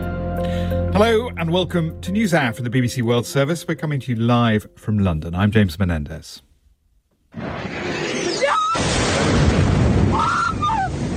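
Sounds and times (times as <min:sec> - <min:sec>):
speech: 0:01.0 - 0:06.5
missile attack explosion in a city with a long heavy roar and rumble: 0:07.3 - 0:11.1.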